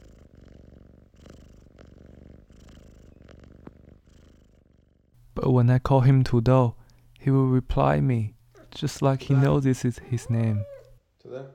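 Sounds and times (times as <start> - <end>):
male cat purring while being stroked: 0.0 - 5.2, 8.5 - 11.0
speech: 5.4 - 10.7, 11.3 - 11.5.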